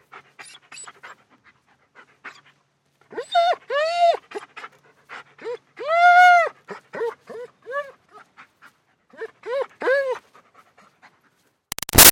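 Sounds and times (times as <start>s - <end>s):
German Shepherd dog panting: 0.0s - 5.8s, 6.5s - 11.6s
German Shepherd dog whining: 0.4s - 1.1s, 3.1s - 4.7s, 5.4s - 8.0s, 9.2s - 10.2s.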